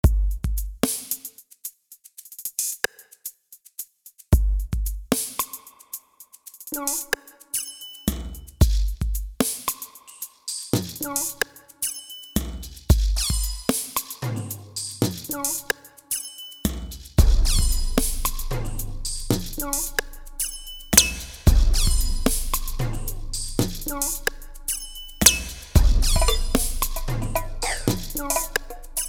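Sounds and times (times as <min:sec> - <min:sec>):
eclectic drums: 0:00.0 - 0:29.0.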